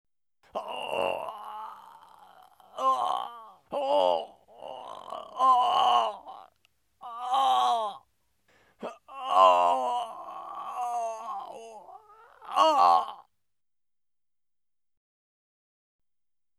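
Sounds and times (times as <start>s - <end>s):
man groaning: 0.5s - 8.0s, 8.8s - 13.2s.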